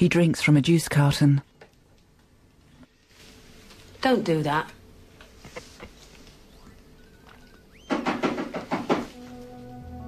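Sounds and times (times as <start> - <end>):
speech: 0.0 - 1.5, 4.0 - 4.8
knocking on a door: 7.9 - 9.2.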